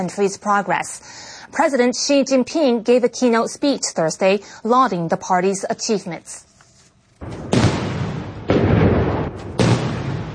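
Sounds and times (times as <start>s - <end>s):
speech: 0.0s - 6.5s
open-air cannon salute firing: 7.2s - 10.3s.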